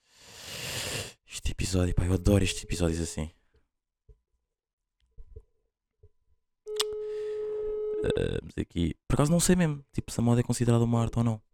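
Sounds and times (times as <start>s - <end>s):
speech: 1.7s - 3.4s, 8.0s - 11.5s
telephone ringing tone on a call: 1.9s - 2.8s, 6.7s - 8.2s.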